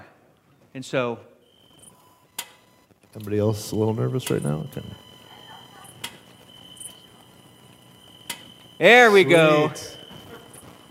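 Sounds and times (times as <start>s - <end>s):
speech: 0.7s - 1.3s, 3.1s - 5.1s, 8.8s - 10.0s
recorded cricket sounds played at low volume in a church: 3.8s - 10.8s.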